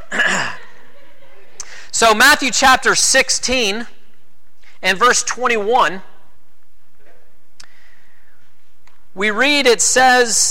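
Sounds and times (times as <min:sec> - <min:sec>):
laughter: 0:00.0 - 0:01.7
person sneezing: 0:00.1 - 0:00.7
speech: 0:02.0 - 0:04.0, 0:04.8 - 0:06.1, 0:09.2 - 0:10.4.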